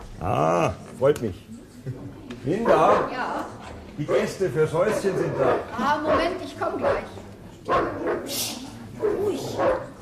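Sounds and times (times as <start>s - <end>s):
speech: 0.2s - 3.4s, 4.0s - 8.5s
guard dog barking: 2.7s - 3.2s, 5.3s - 7.1s, 7.7s - 8.4s, 9.0s - 10.0s.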